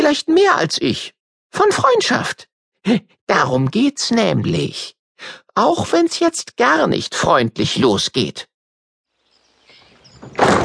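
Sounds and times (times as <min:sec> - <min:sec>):
speech: 0:00.1 - 0:08.5, 0:10.2 - 0:10.6
garden gate banging shut: 0:10.2 - 0:10.6.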